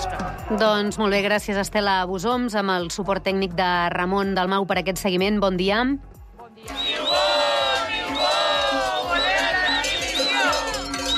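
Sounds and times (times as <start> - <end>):
crowd of protesting teachers chanting and shouting on a road: 0.0 - 1.5, 6.0 - 11.1
speech: 0.5 - 7.4
steady regular drumbeat: 6.7 - 11.1.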